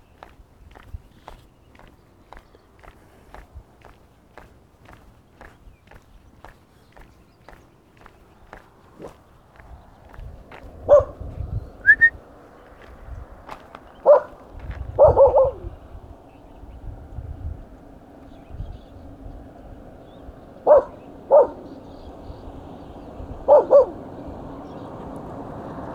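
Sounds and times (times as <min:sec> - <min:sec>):
white dog barking: 0:10.8 - 0:12.1, 0:14.0 - 0:15.8, 0:20.6 - 0:21.9, 0:23.4 - 0:24.1.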